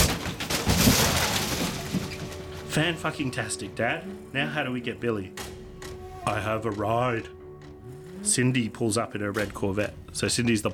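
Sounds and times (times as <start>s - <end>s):
debris shattering: 0.0s - 3.0s
van crashing off the road: 0.0s - 3.6s
metal crunching: 0.0s - 10.7s
speech: 2.8s - 5.4s, 6.3s - 10.7s.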